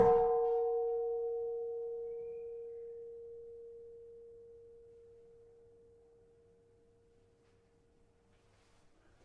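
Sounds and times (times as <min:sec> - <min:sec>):
tuned gamelan keno playing A sharp: 0:00.0 - 0:06.3.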